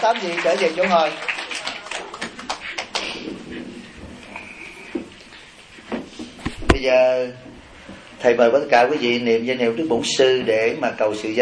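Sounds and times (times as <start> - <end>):
speech: 0.0 - 1.3, 6.8 - 7.5, 8.2 - 11.4
crowd applauding warmly: 0.0 - 3.5.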